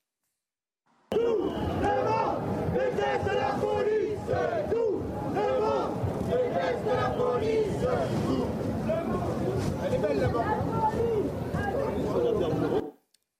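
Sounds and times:
shouting at a demonstration: 1.1 - 9.0
demonstration crowd chanting a French anti-police slogan in unison: 1.1 - 12.8.

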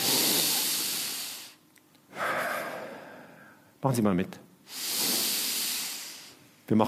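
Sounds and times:
deep rushing breath in: 0.0 - 3.7, 4.7 - 6.4
speech: 3.8 - 4.9, 6.7 - 6.8.

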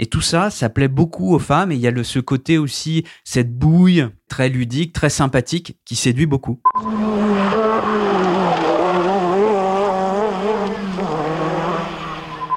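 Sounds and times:
speech: 0.0 - 7.9
Renault R5 Maxi Turbo rally car engine roaring past at the Tour de Corse: 6.8 - 12.5.

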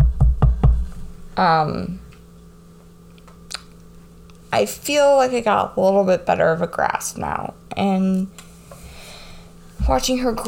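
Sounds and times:
quick knocks on a wooden surface: 0.0 - 0.9
speech: 1.4 - 2.0, 4.5 - 8.4, 9.8 - 10.4.

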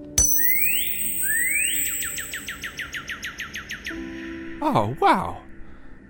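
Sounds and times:
cardinal birdsong from a tapped ring: 0.2 - 4.1
speech: 4.6 - 5.5.

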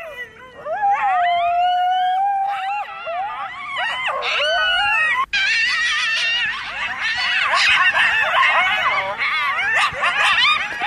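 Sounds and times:
chorus of coyotes yipping and howling outside at night: 0.0 - 10.8.

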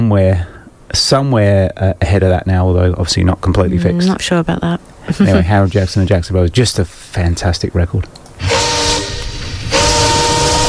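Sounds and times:
speech: 0.1 - 8.7
laughter: 5.1 - 5.8
train rumbling on the track: 8.4 - 10.6.

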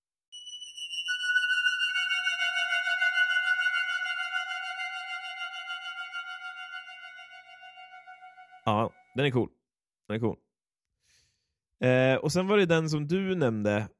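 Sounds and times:
Yamaha CS-80 analog synthesizer playing a sustained chord: 1.1 - 9.1
speech: 8.7 - 10.4, 11.8 - 13.9.

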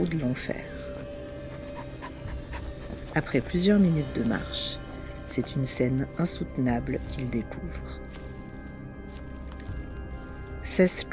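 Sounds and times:
speech: 0.0 - 0.9, 3.2 - 8.2, 10.7 - 11.1
low rumbling background: 0.0 - 11.1
dogs panting in a forest: 1.3 - 3.6.

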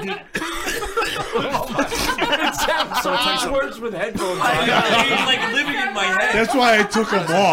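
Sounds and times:
speech: 0.0 - 0.4, 1.1 - 7.5
laughter: 0.0 - 7.5
man coughing: 0.2 - 2.4.

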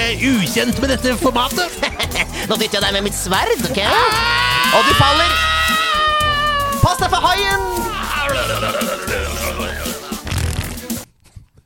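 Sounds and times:
speech: 0.1 - 5.5, 6.9 - 9.4
laughter: 0.8 - 10.4
loud sputtering fart sound blown with the mouth: 9.6 - 11.1.

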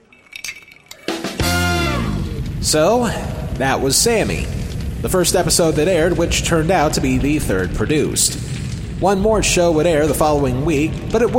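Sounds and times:
glasses clinking in a toast: 0.0 - 1.4
speech: 2.6 - 11.3.

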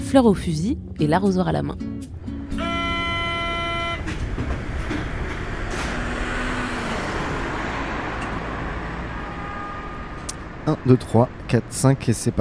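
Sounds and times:
speech: 0.1 - 2.7, 10.6 - 12.3
metro train rumbling along the track: 2.1 - 12.3
bright two-tone metro train horn or whistle: 2.5 - 4.4, 9.1 - 10.2.

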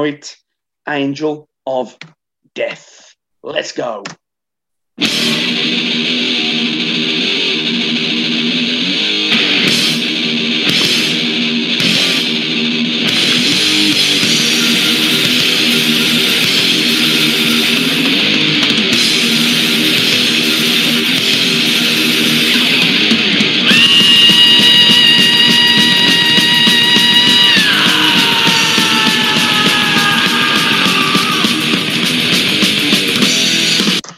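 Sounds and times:
speech: 0.0 - 4.2, 5.0 - 6.5
loud distorted thrash metal with guitars and drums: 5.0 - 34.0
long piercing high-pitched scream: 23.6 - 32.2.

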